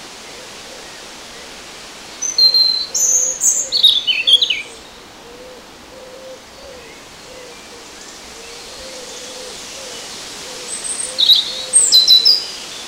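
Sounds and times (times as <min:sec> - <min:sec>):
European robin Erithacus rubecula warbling song: 0:02.2 - 0:05.0, 0:06.0 - 0:12.5.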